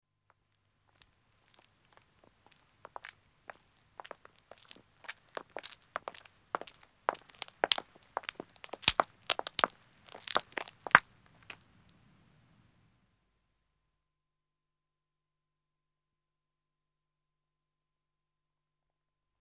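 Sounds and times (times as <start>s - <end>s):
man's footsteps walking on a country road: 1.0s - 11.7s.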